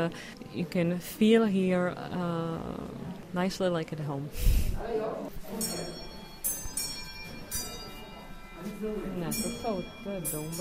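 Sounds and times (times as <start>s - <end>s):
speech: 0.0s - 6.0s, 8.7s - 10.5s
voices murmuring: 4.5s - 10.5s
Christmas bells ringing: 5.4s - 10.5s.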